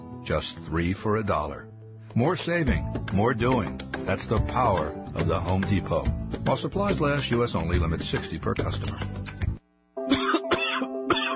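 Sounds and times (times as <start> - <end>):
speech: 0.3 - 9.3, 10.1 - 10.3
harsh chesty coughing from a person with a heavy cough: 10.0 - 11.3.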